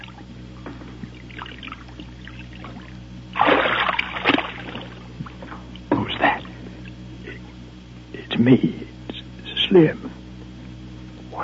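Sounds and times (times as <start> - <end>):
water sloshing and splashing as a person wading up a creek stumbles: 1.0 - 6.1
speech: 8.4 - 8.9, 9.7 - 10.0.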